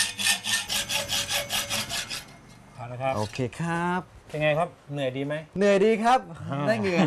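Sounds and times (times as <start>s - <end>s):
handsaw cutting a steel bar by hand: 0.0s - 2.4s
speech: 2.9s - 7.0s.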